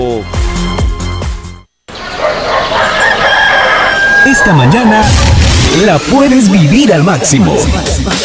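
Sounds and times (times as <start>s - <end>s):
speech: 0.0s - 0.7s, 4.3s - 8.2s
loud rooster crowing: 1.9s - 5.3s.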